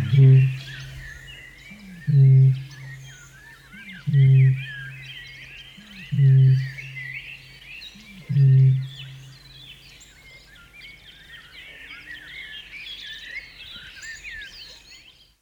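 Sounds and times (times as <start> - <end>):
Australasian bittern booming: 0.0 - 1.0
chorus of high chirping songbirds: 0.0 - 15.3.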